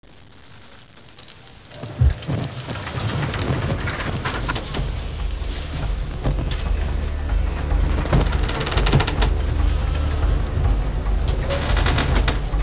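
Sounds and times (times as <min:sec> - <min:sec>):
boat creaking: 0:01.7 - 0:12.6.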